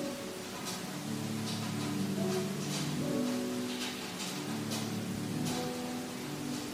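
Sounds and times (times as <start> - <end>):
soft sustained piano notes: 0.0 - 6.7
steady rain falling: 0.0 - 6.7.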